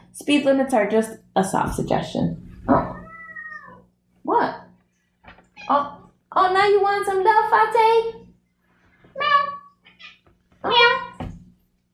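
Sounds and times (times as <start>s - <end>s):
speech: 0.2s - 2.9s, 5.7s - 8.2s
cat meowing: 2.7s - 3.8s, 9.2s - 11.2s.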